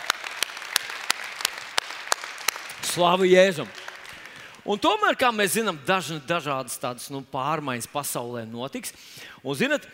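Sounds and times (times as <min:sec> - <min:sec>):
congregation applauding: 0:00.0 - 0:04.8
speech: 0:02.9 - 0:03.8, 0:04.7 - 0:09.9.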